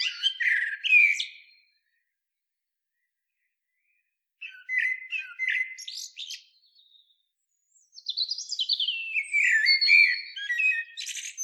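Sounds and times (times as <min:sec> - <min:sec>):
Eurasian blackbird Turdus merula singing: 0:00.0 - 0:01.8, 0:04.4 - 0:11.4.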